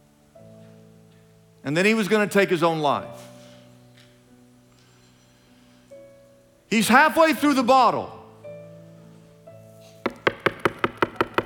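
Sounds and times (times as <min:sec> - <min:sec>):
speech: 0:01.6 - 0:03.3, 0:06.7 - 0:08.2
sharp knocks on a door: 0:10.1 - 0:11.4.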